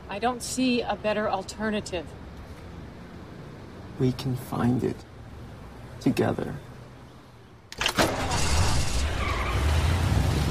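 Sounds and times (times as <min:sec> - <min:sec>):
speech: 0:00.2 - 0:02.2, 0:04.0 - 0:05.1, 0:06.0 - 0:06.7
car engine starting with a quick crank: 0:07.8 - 0:10.4
car tires screeching away: 0:07.8 - 0:10.4.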